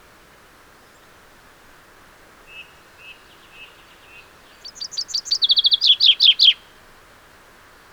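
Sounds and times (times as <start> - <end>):
Common chaffinch song, Fringilla coelebs: 2.5 - 6.7.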